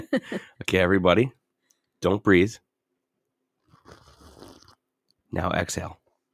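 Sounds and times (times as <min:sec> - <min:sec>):
speech: 0:00.0 - 0:01.4, 0:02.0 - 0:02.7, 0:05.3 - 0:06.0
sip of coffee: 0:03.6 - 0:04.8.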